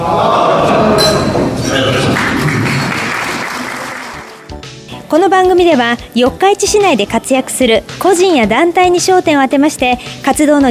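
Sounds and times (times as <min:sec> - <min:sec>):
glasses clinking in a toast at a hotel gathering in Yokkaichi Japan: 0:00.9 - 0:01.5
people clapping at a hotel gathering: 0:01.9 - 0:04.8
speech: 0:05.4 - 0:10.6.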